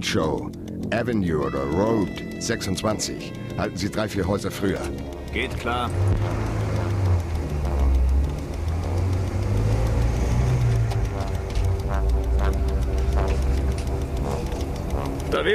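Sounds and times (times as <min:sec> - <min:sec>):
speech: 0:00.0 - 0:06.6, 0:15.3 - 0:15.5
car engine idling on a residential street: 0:03.2 - 0:15.5.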